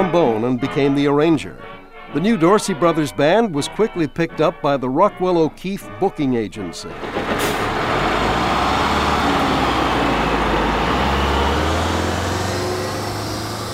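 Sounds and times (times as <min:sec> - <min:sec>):
speech: 0:00.0 - 0:07.3
broadband road noise: 0:06.9 - 0:13.7
bus driving on the road with low engine drone: 0:06.9 - 0:13.7.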